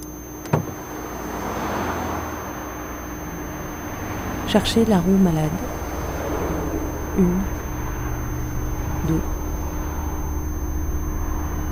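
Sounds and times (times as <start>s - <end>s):
motorway traffic roar: 0.4s - 11.7s
sharp thump: 0.5s - 0.8s
car rushing past on a motorway: 0.9s - 2.8s, 3.5s - 8.9s
speech: 4.5s - 5.8s, 7.2s - 7.6s, 9.0s - 9.3s.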